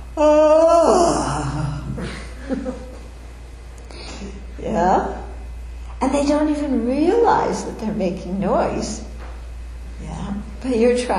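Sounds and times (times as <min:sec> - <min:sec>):
person imitating a loud drawn-out yawn: 0:00.2 - 0:02.2
laughter: 0:01.8 - 0:03.0
speech: 0:06.2 - 0:09.1, 0:10.0 - 0:11.1.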